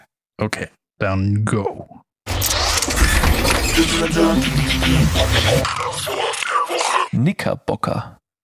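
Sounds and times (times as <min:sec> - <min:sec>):
speech: 0:00.4 - 0:02.4, 0:03.8 - 0:06.3, 0:07.1 - 0:08.2
loud dense intro jingle with stepping melody and shattering effects: 0:02.3 - 0:06.1.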